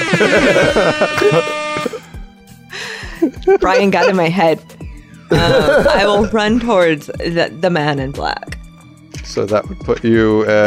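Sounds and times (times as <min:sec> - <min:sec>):
laughter: 0:00.0 - 0:02.0, 0:03.2 - 0:04.5, 0:05.3 - 0:06.4
voice making a harsh nasal buzzing noise imitating a buzzer: 0:00.0 - 0:02.0, 0:03.6 - 0:04.2
speech: 0:00.2 - 0:02.0, 0:03.2 - 0:04.7, 0:05.3 - 0:08.6, 0:09.2 - 0:10.6
person humming lower quieter tones: 0:03.3 - 0:04.2, 0:05.3 - 0:06.2.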